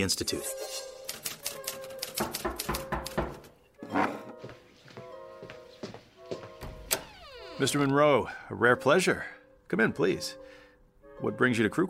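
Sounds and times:
speech: 0.0 - 0.9, 7.6 - 10.4, 11.2 - 11.8
rapid mechanical typewriter keystrokes: 1.1 - 3.4.

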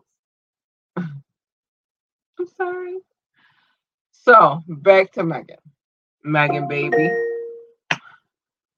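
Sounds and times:
speech: 2.4 - 3.2, 4.2 - 7.3
smart speaker reminder chime: 6.5 - 7.7.

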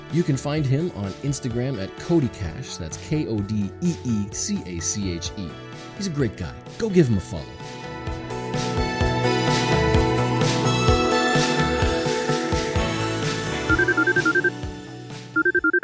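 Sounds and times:
music: 0.0 - 15.8
speech: 0.1 - 7.8
telephone ringing for a phone-in call: 13.7 - 14.6, 15.4 - 15.8.

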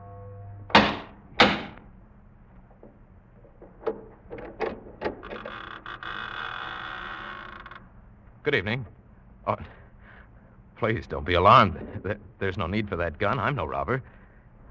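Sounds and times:
heavy oak door creaking open: 0.0 - 1.9, 2.7 - 8.0
latch clicks: 0.7 - 1.9, 2.6 - 6.0
speech: 8.5 - 9.8, 10.8 - 14.2.

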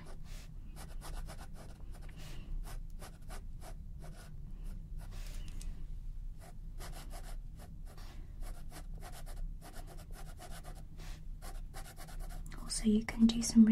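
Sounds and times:
fine liner pen drawing on paper: 0.0 - 4.3, 6.4 - 10.8, 11.4 - 12.4
soft continuous hum: 0.0 - 13.6
speech: 12.8 - 13.6.

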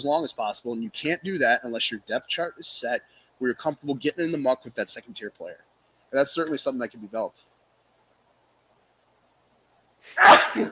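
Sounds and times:
speech: 0.0 - 7.5, 10.0 - 10.7
loud sneeze: 10.0 - 10.7.

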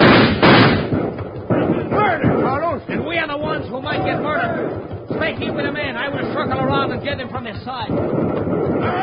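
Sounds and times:
gunshots in a radio drama shootout: 0.0 - 9.0
voices: 1.4 - 8.1, 8.7 - 9.0.

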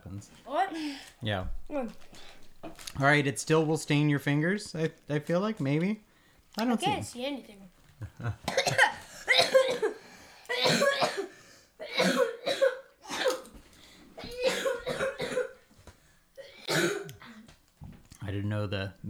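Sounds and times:
speech: 0.2 - 2.3, 3.0 - 8.9
laughter: 8.0 - 9.2
person coughing hard after popcorn caught in the throat: 8.4 - 13.5, 14.2 - 15.6, 16.4 - 17.5.

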